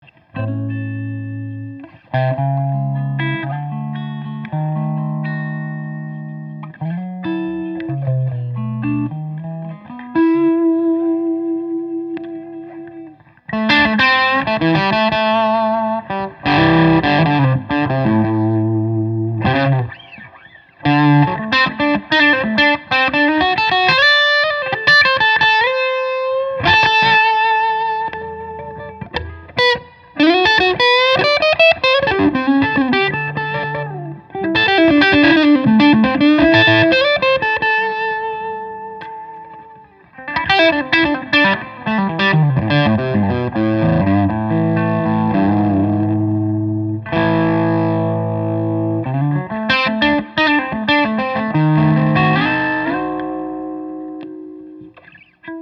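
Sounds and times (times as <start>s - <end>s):
1966 Gibson ES-335 semi hollow all maple electric guitar: 0.0s - 55.6s.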